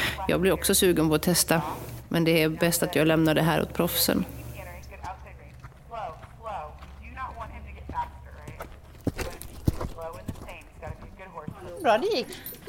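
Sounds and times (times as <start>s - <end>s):
speech: 0.3s - 4.4s, 11.8s - 12.5s
horse hooves clip-clopping on the ground in a paddock during jumping: 2.8s - 12.6s.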